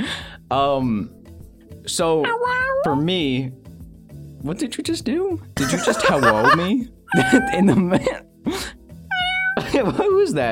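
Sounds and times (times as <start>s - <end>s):
speech: 0.0s - 1.2s, 1.8s - 3.6s, 4.4s - 8.6s, 9.7s - 10.4s
person imitating cat meows: 2.2s - 3.0s, 7.1s - 7.8s, 9.1s - 9.7s
laughter: 5.6s - 8.2s, 9.6s - 10.2s.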